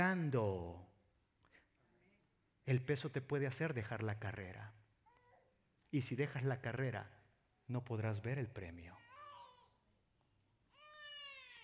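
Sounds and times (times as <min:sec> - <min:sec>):
speech: 0:00.0 - 0:00.9, 0:02.6 - 0:04.8, 0:05.9 - 0:09.1
baby crying in a church audience during a sermon: 0:09.0 - 0:09.8, 0:10.7 - 0:11.6.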